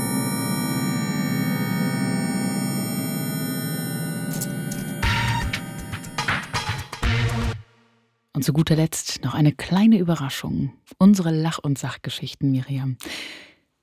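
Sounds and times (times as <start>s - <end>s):
sustained synthesized tones sonifying a spider web: 0.1s - 7.7s
crackling electronic clusters: 3.1s - 7.5s
speech: 8.4s - 13.5s.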